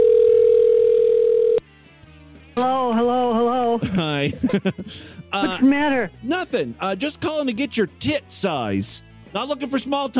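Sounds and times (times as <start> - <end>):
electronic ringback tone on an outgoing phone call: 0.0 - 1.6
laughter: 3.7 - 5.8
speech: 3.8 - 10.1.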